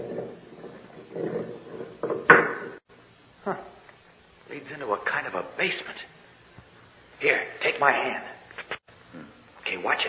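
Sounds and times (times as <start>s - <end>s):
heavy stone door with a ring dragging open with low grinding scrapes: 0.0s - 2.8s
speech: 3.4s - 3.7s, 4.6s - 6.2s, 7.2s - 8.3s, 9.8s - 10.0s.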